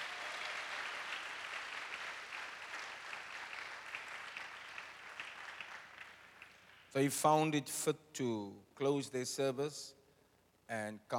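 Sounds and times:
large church audience clapping: 0.0 - 7.0
speech: 6.9 - 10.0, 10.7 - 11.1.

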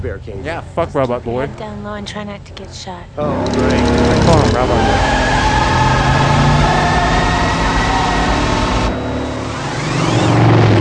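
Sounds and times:
speech: 0.0 - 5.6
loud rear-wheel drive car engine revving: 3.2 - 10.7.

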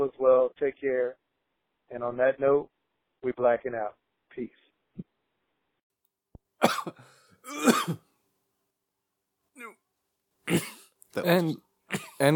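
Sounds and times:
speech: 0.0 - 1.3, 1.9 - 5.1, 6.8 - 8.0, 10.5 - 12.3
harsh raspy coughs: 6.6 - 8.1, 9.6 - 9.8, 10.5 - 12.3.

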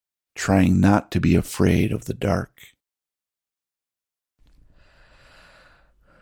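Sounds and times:
speech: 0.4 - 2.7
measured human breathing: 4.6 - 6.2.

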